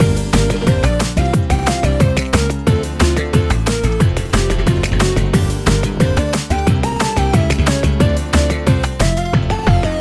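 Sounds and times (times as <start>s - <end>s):
music loop: 0.0s - 9.9s.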